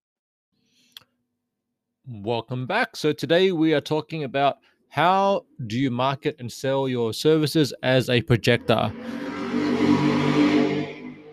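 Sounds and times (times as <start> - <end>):
speech: 2.1 - 10.1
motorbike engine screaming: 8.6 - 11.3.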